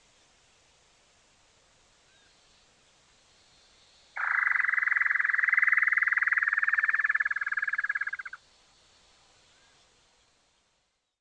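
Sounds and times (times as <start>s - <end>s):
great antshrike Taraba major major call: 4.2s - 8.4s.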